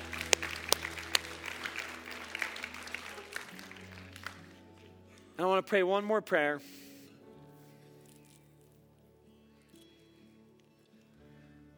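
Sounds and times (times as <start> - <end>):
crowd applauding: 0.0 - 5.3
speech: 5.4 - 6.8.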